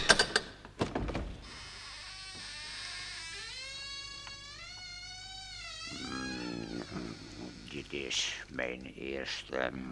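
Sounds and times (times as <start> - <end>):
small cottage door creaking open, pulled by a string: 0.0 - 8.5
speech: 7.9 - 9.8.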